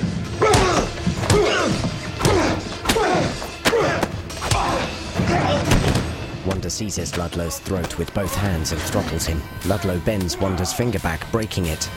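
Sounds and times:
punches landing in a fistfight: 0.4s - 6.2s
speech: 6.7s - 11.9s.

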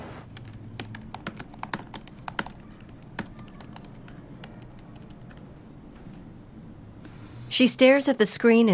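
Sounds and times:
low hum of room noise: 0.0s - 8.7s
typing on a laptop keyboard: 0.3s - 5.5s
speech: 7.6s - 8.7s.

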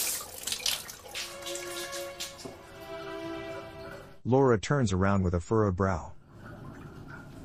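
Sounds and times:
shower water running: 0.0s - 4.2s, 6.2s - 7.4s
speech: 4.2s - 6.2s.

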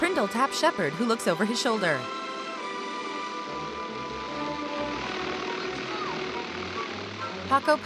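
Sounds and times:
speech: 0.1s - 2.2s, 7.5s - 7.8s
small airplane engine roaring while speeding across a dry field and lifting off: 2.0s - 7.8s.

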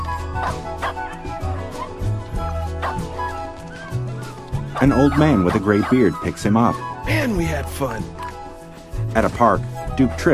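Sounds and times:
puppies yipping and barking as they play in a glass pen in a pet store: 0.0s - 6.5s
music: 0.0s - 10.3s
speech: 4.8s - 8.2s, 9.2s - 10.3s.

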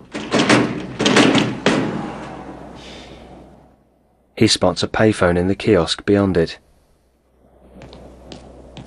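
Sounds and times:
glass-fronted building door pushed open rattling: 0.0s - 2.5s
speech: 4.4s - 6.6s.

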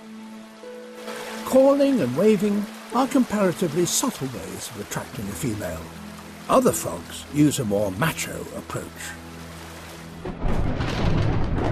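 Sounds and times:
rainstorm on the African savannah: 0.0s - 11.6s
speech: 1.5s - 9.2s
thunder rumbling on the African savannah: 10.2s - 11.6s.

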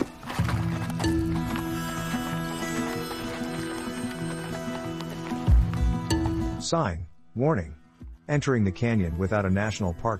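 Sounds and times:
horse hooves clip-clopping as riders head out toward a canyon: 0.0s - 6.6s
steady tonal background: 0.4s - 8.0s
speech: 6.6s - 10.1s.

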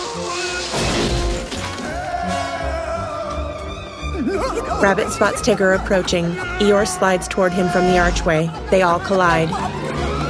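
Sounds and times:
steady music: 0.0s - 10.2s
tree stump shattering: 0.6s - 2.1s
laughter: 4.0s - 10.2s
speech: 4.6s - 9.8s.

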